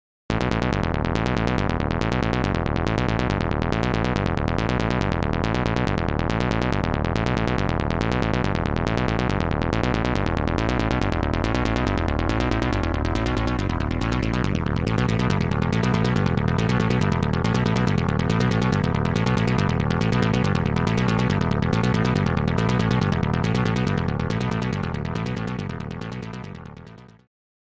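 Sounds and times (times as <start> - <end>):
Casio CZ 5000 synthesizer: 0.4 - 27.1.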